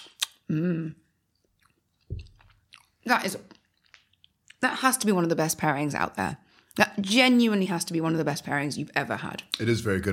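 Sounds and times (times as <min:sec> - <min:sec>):
speech: 0:00.5 - 0:01.0, 0:03.0 - 0:03.6, 0:04.6 - 0:10.1
chewing food with wet mouth sounds: 0:01.3 - 0:04.6.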